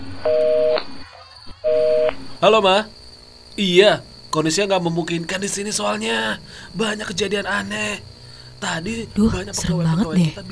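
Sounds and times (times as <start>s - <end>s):
speech: 0.2s - 0.5s, 2.4s - 3.0s, 3.6s - 10.4s
telephone ringing tones of an outgoing call: 0.3s - 0.8s, 1.6s - 2.5s.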